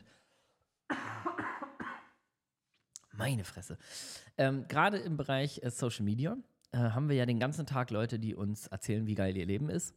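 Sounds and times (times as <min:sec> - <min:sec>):
harsh coughing: 0:00.9 - 0:02.2
speech: 0:03.2 - 0:09.9.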